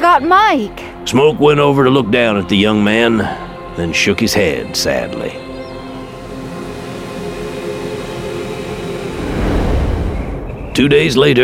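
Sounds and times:
speech: 0:00.0 - 0:05.4, 0:10.8 - 0:11.4
droning metallic hum: 0:02.2 - 0:10.9
train rumbling at a depot: 0:03.8 - 0:11.4.

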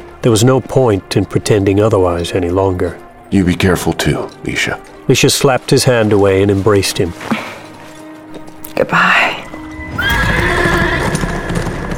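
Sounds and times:
horse hooves galloping: 0:00.1 - 0:11.9
speech: 0:00.2 - 0:07.6, 0:08.8 - 0:09.4
drawn-out horse whinny: 0:09.8 - 0:11.9.

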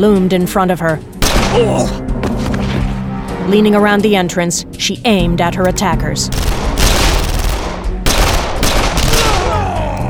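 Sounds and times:
speech: 0:00.0 - 0:02.5, 0:03.5 - 0:06.6
sustained automatic-weapons fire from about half a dozen guns: 0:05.7 - 0:10.0.

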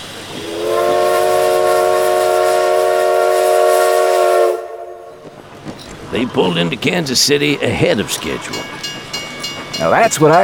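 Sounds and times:
low rumble of departing steam train: 0:00.0 - 0:10.4
steam locomotive whistle: 0:00.3 - 0:05.3
speech: 0:06.2 - 0:08.9, 0:09.8 - 0:10.4.

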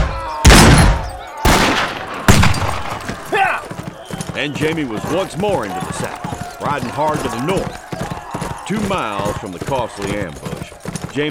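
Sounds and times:
volley of rifle and pistol gunfire: 0:00.5 - 0:03.2
speech: 0:04.4 - 0:07.8, 0:08.7 - 0:10.5.

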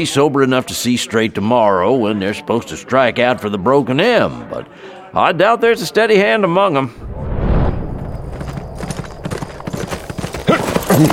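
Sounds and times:
speech: 0:00.0 - 0:07.1, 0:11.0 - 0:11.1
Appaloosa gelding hooves clip-clopping: 0:08.0 - 0:11.1.

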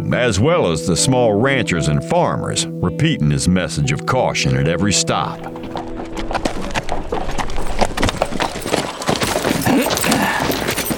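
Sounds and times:
speech: 0:00.1 - 0:05.9
horse hooves clip-clopping: 0:05.3 - 0:10.9.

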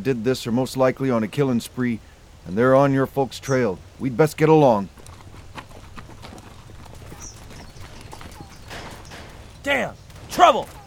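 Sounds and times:
speech: 0:00.0 - 0:05.0
horse hooves clip-clopping on hard ground: 0:04.3 - 0:10.8
faint high bird call: 0:07.1 - 0:09.3.

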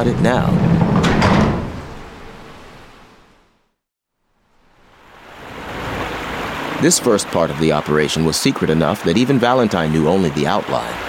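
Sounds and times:
speech: 0:00.0 - 0:00.8, 0:06.8 - 0:11.0
heavy loading doors sliding closed with a rushing hiss: 0:00.0 - 0:03.4.

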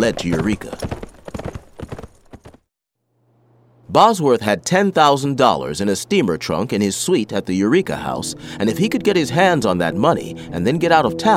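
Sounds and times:
speech: 0:00.0 - 0:00.9, 0:03.9 - 0:11.3
horse galloping on a trail: 0:00.0 - 0:02.7
low steady hum: 0:03.1 - 0:11.3.

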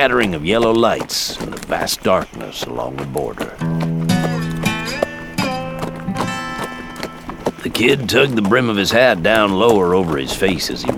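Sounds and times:
speech: 0:00.0 - 0:04.0, 0:07.7 - 0:10.9
horse hooves clip-clopping at a slow walk: 0:00.0 - 0:10.9
sustained musical tones: 0:03.6 - 0:08.1.

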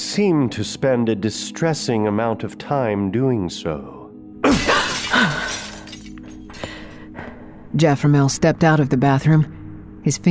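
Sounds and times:
speech: 0:00.1 - 0:04.0, 0:07.8 - 0:10.2
mirror glass shattering in a bathroom: 0:04.4 - 0:06.7
mirror glass shards tinkling onto the floor: 0:04.7 - 0:06.6.

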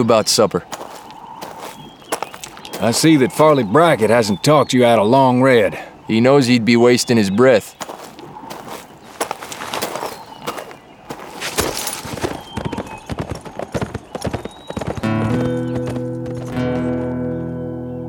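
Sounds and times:
speech: 0:00.0 - 0:00.9, 0:02.8 - 0:07.8
horse hooves clip-clopping on hard ground: 0:00.7 - 0:04.4, 0:07.8 - 0:17.4.

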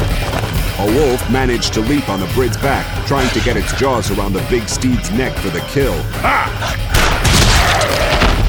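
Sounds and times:
scattered thumps: 0:00.0 - 0:08.4
sustained rumbling noise: 0:00.0 - 0:08.4
speech: 0:00.8 - 0:07.0
gunshot from a shotgun pistol: 0:06.9 - 0:08.4.

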